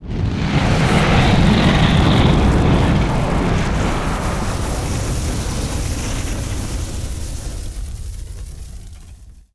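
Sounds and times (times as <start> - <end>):
fog fire: 0.0 - 9.5.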